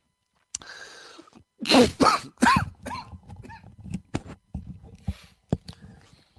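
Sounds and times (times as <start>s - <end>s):
several harsh coughs: 1.6s - 3.6s.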